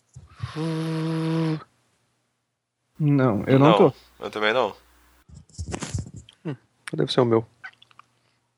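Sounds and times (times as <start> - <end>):
speech: 0.5 - 1.2, 3.0 - 4.8, 6.4 - 7.5
computer cooling fan whirring: 3.0 - 5.2.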